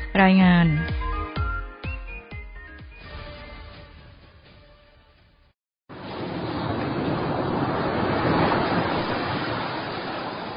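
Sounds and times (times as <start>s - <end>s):
speech: 0.2s - 1.0s
ocean waves breaking on a sandy beach: 5.9s - 10.5s.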